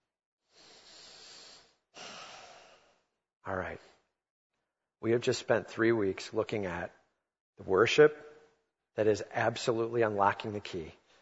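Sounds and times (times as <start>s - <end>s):
soft deep breathing of a group: 0.4s - 3.2s
speech: 3.5s - 3.9s, 5.0s - 7.0s, 7.6s - 8.3s, 9.0s - 11.0s.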